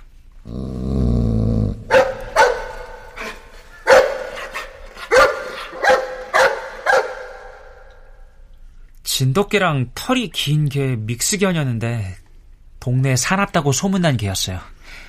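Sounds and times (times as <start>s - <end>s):
dog growling: 0.4s - 5.8s
dog barking loudly: 1.9s - 7.9s
speech: 9.3s - 12.2s, 12.8s - 15.0s.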